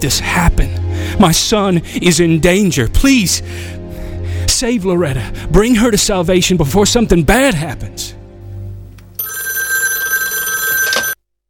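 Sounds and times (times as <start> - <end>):
speech: 0.0 - 3.8, 4.5 - 8.2
telephone bell ringing: 9.2 - 11.2.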